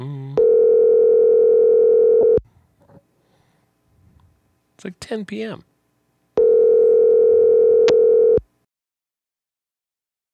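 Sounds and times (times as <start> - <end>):
telephone ringing tone while calling someone: 0.4 - 2.4, 6.4 - 8.4
speech: 4.8 - 5.7.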